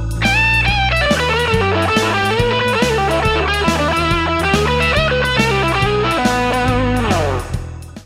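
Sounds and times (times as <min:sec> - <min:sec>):
guitar lick: 0:00.1 - 0:07.9.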